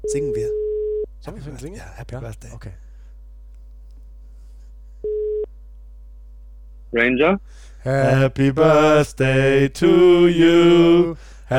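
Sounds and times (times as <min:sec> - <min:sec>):
phone ringing tone beep from an outgoing call: 0:00.0 - 0:01.1, 0:05.0 - 0:05.5
speech: 0:00.1 - 0:00.6, 0:01.2 - 0:02.9, 0:06.9 - 0:11.5.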